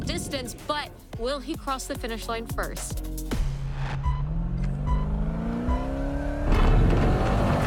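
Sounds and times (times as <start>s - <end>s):
speech: 0.3s - 4.1s
Pro 4 off-road racing truck engine revving on a track: 3.6s - 7.6s.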